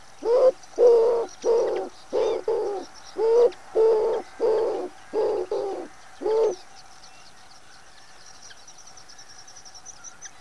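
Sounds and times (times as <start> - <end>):
common wood pigeon cooing: 0.2 - 6.6.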